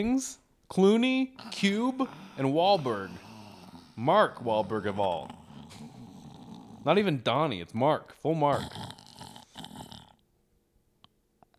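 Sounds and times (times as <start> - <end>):
speech: 0.0 - 3.3, 4.0 - 5.9, 6.8 - 9.0
person imitating a loud rough snore: 1.3 - 7.2, 8.4 - 10.2.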